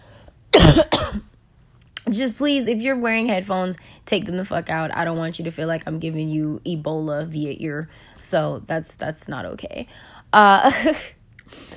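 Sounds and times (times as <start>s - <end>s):
person coughing: 0.5s - 1.3s
speech: 0.7s - 1.2s, 2.1s - 11.7s.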